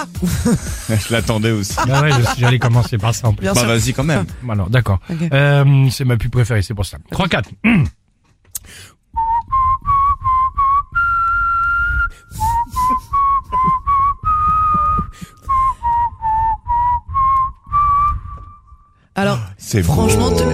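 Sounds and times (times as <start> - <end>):
laughter: 0.0 - 3.9, 12.7 - 15.4
speech: 0.0 - 8.0, 19.2 - 20.5
person whistling a catchy bouncy advertising jingle: 9.2 - 18.9.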